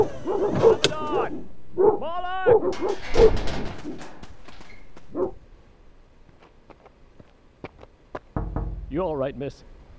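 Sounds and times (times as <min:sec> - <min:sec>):
dogs barking angrily: 0:00.0 - 0:04.2, 0:05.0 - 0:05.4
speech: 0:02.6 - 0:03.5, 0:09.0 - 0:09.8.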